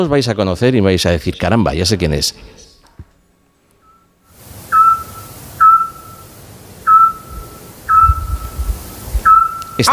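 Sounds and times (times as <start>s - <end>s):
speech: 0.0s - 2.6s, 9.8s - 9.9s
scops owl calling at night: 3.8s - 9.9s.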